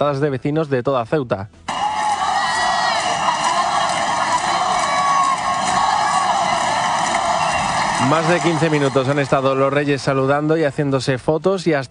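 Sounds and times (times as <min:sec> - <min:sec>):
speech: 0:00.0 - 0:01.7, 0:08.0 - 0:11.9
higher shouts rising above the crowd: 0:01.7 - 0:09.8
large crowd of residents cheering and chanting in Ceuta, Spain: 0:01.7 - 0:10.4.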